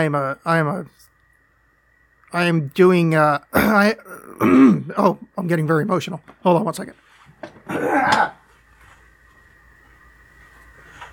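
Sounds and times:
speech: 0.0s - 1.1s, 2.3s - 8.4s
throat-clearing cough: 3.6s - 4.9s, 7.7s - 8.4s.

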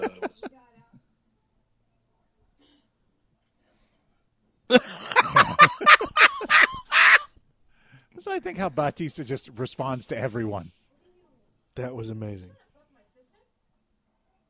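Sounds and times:
laughter: 0.0s - 0.5s, 4.7s - 7.3s
bird cawing in a cage: 6.4s - 7.3s
speech: 8.4s - 10.8s, 11.8s - 12.6s.

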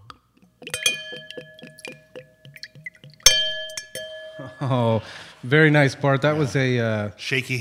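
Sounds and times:
wine glugging as it is poured into a glass: 0.6s - 4.6s
bright ringing clink of glass: 0.6s - 5.4s
speech: 4.6s - 7.5s.

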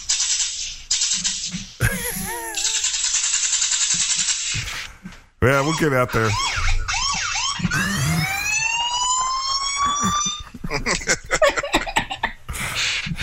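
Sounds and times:
clicks and bursts of noise: 0.0s - 11.3s
speech: 5.4s - 6.6s
rising electronic alarm siren played through a phone speaker: 5.5s - 10.6s
laughter: 9.8s - 12.4s.

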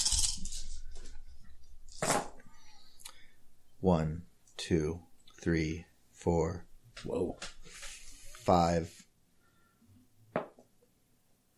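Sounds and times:
handful of dice rolled during a game: 0.0s - 0.8s
speech: 3.8s - 7.6s, 8.5s - 9.0s.

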